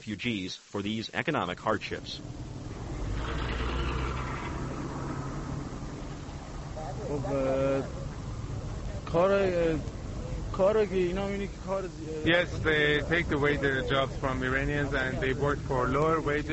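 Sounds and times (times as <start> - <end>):
speech: 0.0 - 2.5, 7.0 - 8.0, 9.1 - 10.0, 10.6 - 16.5
people's voices: 0.0 - 3.8, 4.5 - 16.5
city traffic roar at a traffic circle: 1.8 - 16.5.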